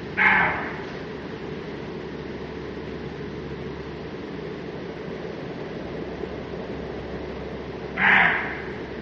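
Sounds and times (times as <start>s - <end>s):
roe deer bark: 0.1s - 1.1s, 7.9s - 9.0s.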